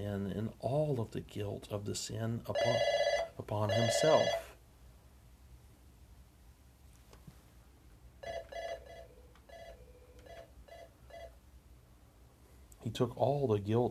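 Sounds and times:
speech: 0.0s - 4.5s, 12.9s - 13.8s
steady hiss: 0.0s - 13.8s
telephone ringing with short electronic tonal bursts: 2.5s - 4.6s, 8.2s - 11.4s.

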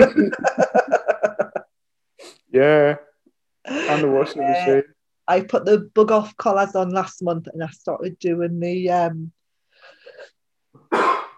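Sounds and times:
speech: 0.0s - 0.7s, 2.6s - 3.0s, 3.7s - 9.4s
laughter: 0.0s - 1.7s
single human sneeze: 10.9s - 11.3s.

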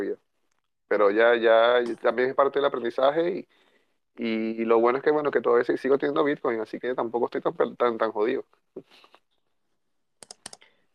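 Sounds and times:
speech: 0.9s - 9.2s
soft clicks at a computer: 10.2s - 10.7s.

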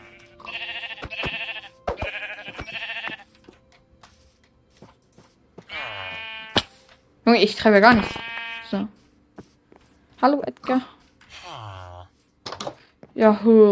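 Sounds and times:
sheep bleating: 0.0s - 3.3s, 5.6s - 6.7s, 7.9s - 8.9s, 11.3s - 12.1s
speech: 7.3s - 9.0s, 10.2s - 11.0s, 13.2s - 13.7s.

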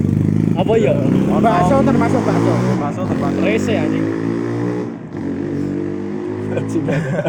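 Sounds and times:
motorcycle engine passing by: 0.0s - 6.8s
speech: 0.6s - 4.2s, 6.6s - 7.2s
laughter: 6.4s - 7.2s.

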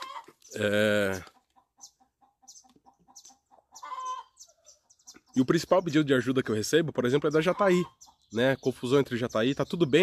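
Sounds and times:
hen cackling after laying an egg: 0.0s - 4.8s
speech: 0.6s - 1.3s, 5.4s - 10.0s.

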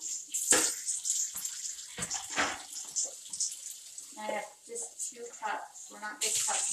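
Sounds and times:
water hitting metal pasta colander: 0.0s - 4.4s, 6.2s - 6.7s
water running from tap rinsing a metal pasta colander: 0.0s - 6.7s
speech: 4.2s - 6.7s.

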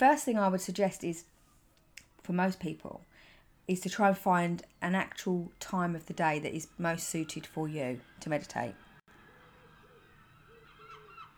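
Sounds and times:
speech: 0.0s - 1.4s, 2.2s - 8.8s
geese-like birds honking and calling outside: 6.4s - 11.3s.

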